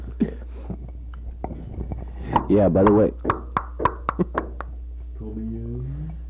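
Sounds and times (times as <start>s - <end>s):
knocking on a door: 2.4s - 4.7s
speech: 2.5s - 3.2s.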